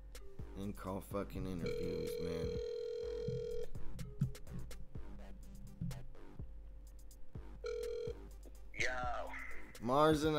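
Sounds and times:
speech: 0:00.6 - 0:03.6, 0:09.8 - 0:10.3
busier rhythmic electronic sounds: 0:01.4 - 0:10.3
steady buzzing phone ring tone on an outgoing call: 0:01.6 - 0:03.8, 0:07.6 - 0:08.2.

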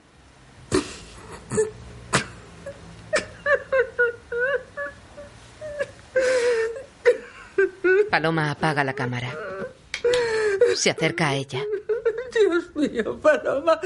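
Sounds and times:
speech: 0:01.5 - 0:01.8, 0:08.1 - 0:09.5, 0:10.8 - 0:13.8
woman crying: 0:02.6 - 0:13.8
woman's sharp breathy gasps: 0:10.0 - 0:10.6.

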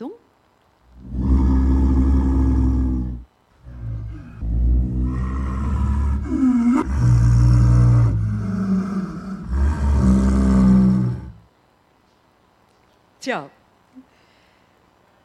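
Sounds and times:
leopard calling with deep rasping roars: 0:00.9 - 0:11.4
speech: 0:13.3 - 0:13.6.

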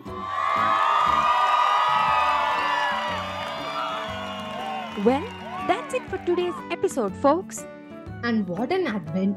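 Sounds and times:
large crowd cheering and shouting for cricket teams: 0:00.0 - 0:06.9
speech: 0:05.0 - 0:09.3.

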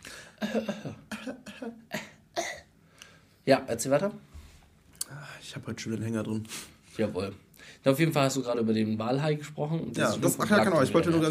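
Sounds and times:
speech: 0:00.4 - 0:01.0, 0:03.5 - 0:04.3, 0:05.5 - 0:11.2
raspy coughs: 0:00.4 - 0:02.7.

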